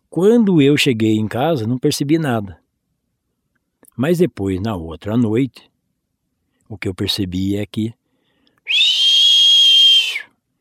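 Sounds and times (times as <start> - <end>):
speech: 0.2 - 2.6, 4.0 - 5.7, 6.7 - 8.0
person whistling to imitate a creature in a home orchard at night: 8.7 - 10.3.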